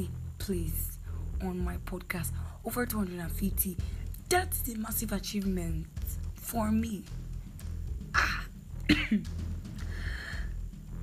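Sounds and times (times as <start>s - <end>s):
speech: 0.0s - 7.2s, 8.9s - 9.5s
low steady hum: 0.0s - 11.0s
throat clearing: 8.2s - 9.3s
congested coughing: 8.2s - 9.4s
breathy wheezy exhale: 9.8s - 10.6s.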